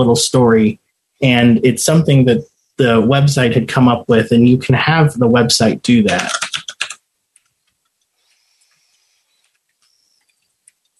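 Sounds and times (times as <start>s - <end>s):
speech: 0.0s - 6.4s
faint high electronic whine: 0.0s - 10.5s
computer keyboard typing: 6.1s - 7.5s.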